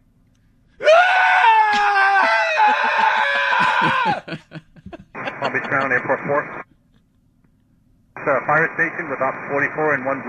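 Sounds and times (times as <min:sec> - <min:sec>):
person giving a long shrill staged scream of panic: 0:00.8 - 0:04.6
laughter: 0:02.2 - 0:07.0
speech: 0:05.8 - 0:06.7, 0:08.2 - 0:10.2.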